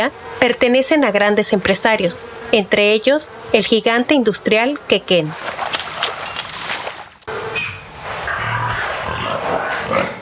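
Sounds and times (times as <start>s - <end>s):
speech: 0.0s - 5.8s
pigs grunting and squealing in a crowded barn on a pig farm: 8.2s - 10.2s.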